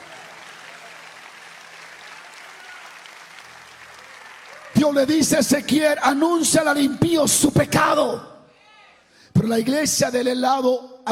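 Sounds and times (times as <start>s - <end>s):
audience applauding: 0.0s - 5.7s
speech: 4.8s - 8.3s, 9.4s - 11.1s.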